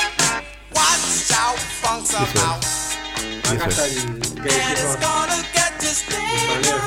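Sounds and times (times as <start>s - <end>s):
lush orchestral soul music in the Philadelphia sound style: 0.0s - 6.8s
steady drumbeat: 0.8s - 6.8s
speech: 1.5s - 6.8s
spoken phrase: 2.2s - 2.8s, 3.4s - 5.1s.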